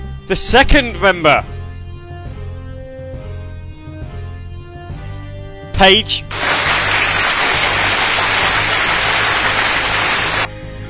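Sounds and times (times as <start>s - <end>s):
speech: 0.3s - 1.5s, 5.8s - 6.4s
sizable crowd applauding: 6.3s - 10.5s.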